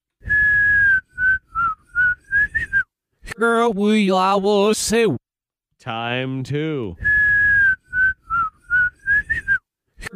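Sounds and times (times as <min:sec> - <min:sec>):
whistled tune played backwards: 0:00.2 - 0:02.9, 0:07.0 - 0:09.6
speech: 0:03.4 - 0:05.2, 0:05.8 - 0:07.1.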